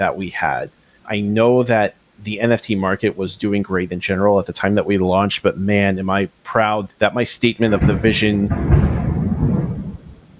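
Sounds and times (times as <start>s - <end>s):
speech: 0.0s - 8.8s
deep rolling thunder as a storm starts: 7.4s - 10.3s.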